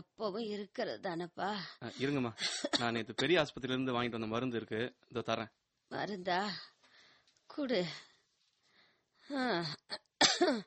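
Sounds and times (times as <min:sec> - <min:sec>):
speech: 0:00.2 - 0:06.7, 0:07.5 - 0:08.1, 0:09.3 - 0:10.6
raspy voiced coughs: 0:02.4 - 0:03.0, 0:09.9 - 0:10.6.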